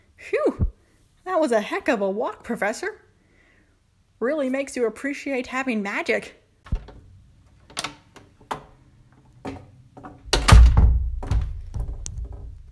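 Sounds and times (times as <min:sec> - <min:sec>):
speech: 0:01.3 - 0:03.0, 0:04.2 - 0:06.4
metallic clicks and rattling of a lock being turned: 0:06.7 - 0:12.6
door thudding shut with a heavy impact: 0:10.3 - 0:12.6.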